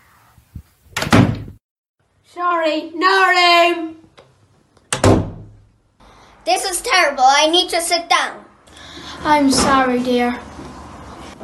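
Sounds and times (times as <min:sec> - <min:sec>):
door being handled: 0:01.0 - 0:01.6, 0:04.9 - 0:05.6
speech: 0:02.3 - 0:04.0, 0:06.4 - 0:08.5, 0:09.2 - 0:10.5.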